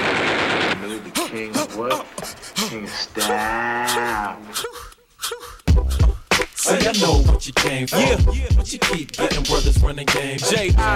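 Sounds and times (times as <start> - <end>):
dense burst of rapid gunfire: 0.0 - 1.5
sharp loud cracks: 0.0 - 2.3
speech: 1.4 - 5.5, 6.6 - 10.9
wailing moaning tones: 3.1 - 6.3.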